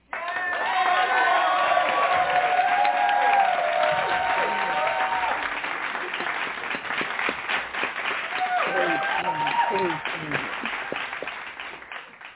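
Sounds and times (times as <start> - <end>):
crowd clapping: 0.0 - 12.3
excited voices calling out and cheering: 0.1 - 5.7, 8.2 - 11.0.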